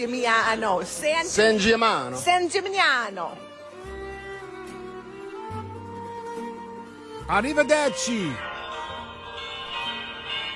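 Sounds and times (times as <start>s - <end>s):
speech: 0.0s - 3.5s, 7.3s - 8.5s
church bells in Italy ringing: 8.0s - 10.5s.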